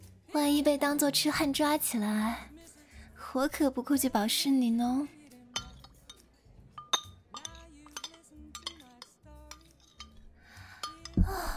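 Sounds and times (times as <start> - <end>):
speech: 0.4 - 2.5, 3.3 - 5.2
glasses clinking in a toast: 5.6 - 6.2, 6.8 - 11.3.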